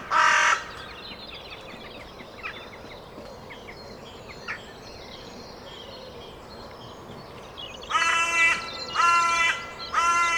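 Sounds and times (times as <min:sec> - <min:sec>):
Carrion crow Corvus corone cawing: 0:07.9 - 0:10.3.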